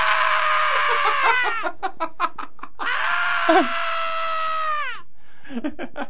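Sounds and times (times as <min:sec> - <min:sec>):
man screaming sound effect: 0:00.0 - 0:01.6, 0:02.8 - 0:05.0
man gasping: 0:03.5 - 0:03.8.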